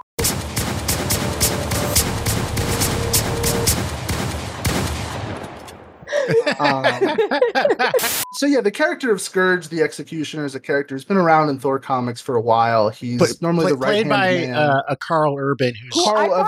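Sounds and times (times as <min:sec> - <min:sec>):
808-style gunshot sound effects: 0:00.2 - 0:06.1
person speaking or laughing: 0:06.1 - 0:08.6, 0:13.0 - 0:15.0, 0:15.8 - 0:16.4
speech: 0:06.3 - 0:16.4.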